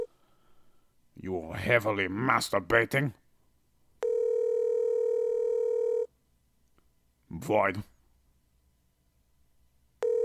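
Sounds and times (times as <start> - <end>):
speech: 1.2 - 3.2, 7.3 - 7.9
steady telephone ringback tone: 4.0 - 6.1, 10.0 - 10.2.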